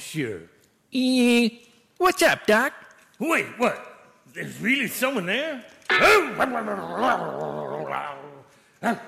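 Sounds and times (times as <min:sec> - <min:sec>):
speech: 0:00.1 - 0:09.0
dog growling: 0:05.9 - 0:08.3.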